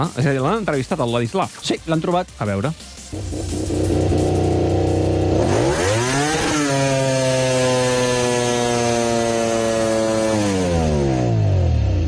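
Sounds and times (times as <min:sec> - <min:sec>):
speech: 0:00.0 - 0:04.2
crashed motorcycle engine idling and revving: 0:03.1 - 0:12.0.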